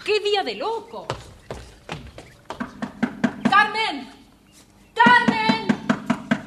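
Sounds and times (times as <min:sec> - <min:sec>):
speech: 0:00.1 - 0:01.2, 0:03.6 - 0:04.2
hollow knocking on a door: 0:01.1 - 0:03.8, 0:05.0 - 0:06.4.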